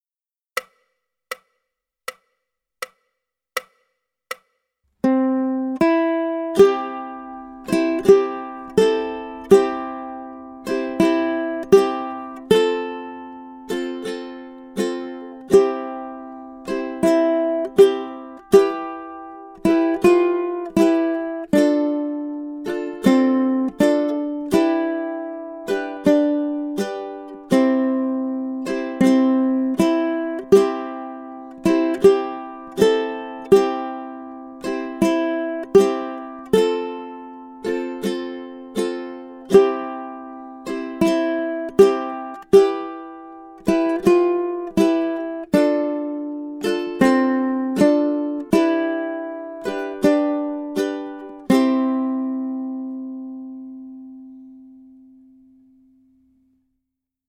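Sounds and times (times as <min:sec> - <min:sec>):
ukulele playing: 0:04.9 - 0:56.0.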